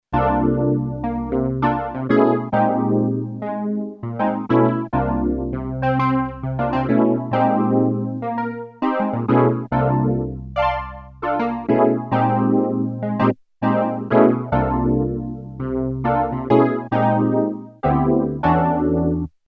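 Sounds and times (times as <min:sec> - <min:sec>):
Kawai SX240 piano: 0:00.1 - 0:19.4.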